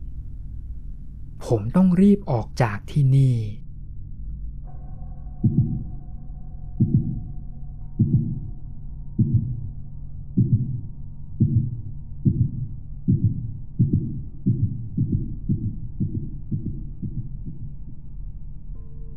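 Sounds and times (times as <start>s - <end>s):
faint low hum: 0.0s - 19.1s
speech: 1.4s - 3.6s
loud pounding heartbeat: 5.4s - 6.0s, 6.8s - 18.1s.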